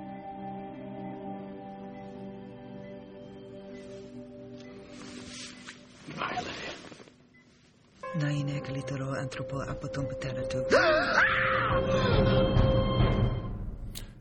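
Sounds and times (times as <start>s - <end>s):
speech: 8.2s - 12.7s
person screaming in a TV show scene: 10.7s - 12.3s.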